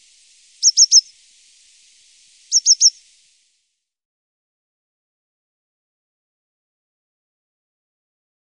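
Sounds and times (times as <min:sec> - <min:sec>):
coal tit calling high thin notes: 0:00.0 - 0:01.6, 0:02.2 - 0:03.2.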